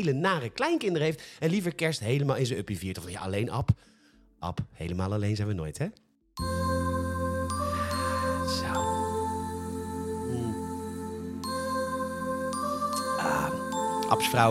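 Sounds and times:
speech: 0.0 - 6.6, 14.1 - 14.4
electronic chimes and tinkling bell tones on a synthesizer: 6.4 - 14.4
warm droning bed: 6.4 - 14.4.

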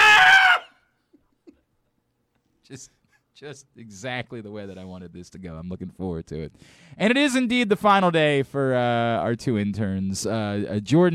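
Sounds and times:
person screaming: 0.0 - 0.8
speech: 2.7 - 11.1.

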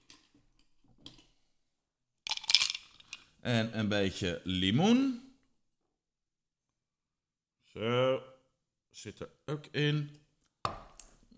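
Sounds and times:
ice cubes dropped into a glass: 2.3 - 3.1
speech: 3.4 - 5.2, 7.8 - 8.3, 9.0 - 10.2.

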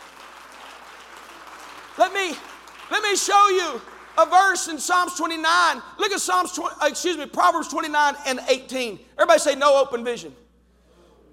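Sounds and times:
audience clapping: 0.0 - 5.4
speech: 2.0 - 10.4.

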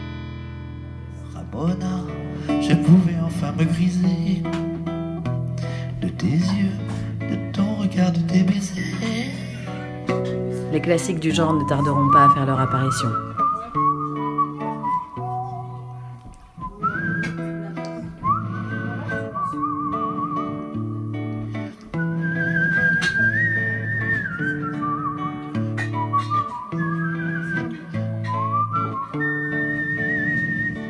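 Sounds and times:
speech: 1.5 - 4.7, 6.1 - 7.1, 7.9 - 9.9, 10.7 - 13.4
steady lower instrumental chords: 2.1 - 29.7
man whistling a melodic tune: 11.3 - 30.8.

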